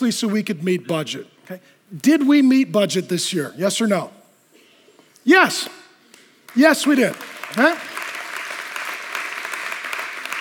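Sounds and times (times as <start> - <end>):
speech: 0.0 - 4.2, 5.2 - 5.8, 6.5 - 7.9
church congregation clapping during the offering: 5.6 - 10.3.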